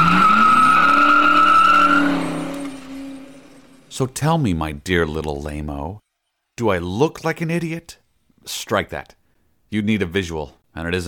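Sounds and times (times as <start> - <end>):
tires squealing: 0.0 - 3.9
turbo special soapbox racer car engine accelerating hard: 0.0 - 3.9
speech: 4.0 - 6.0, 6.6 - 11.0.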